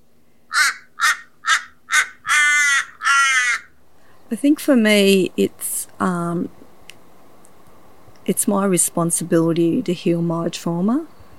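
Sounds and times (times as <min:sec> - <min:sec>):
crow cawing: 0:00.5 - 0:03.8
speech: 0:04.3 - 0:06.6, 0:08.3 - 0:11.3.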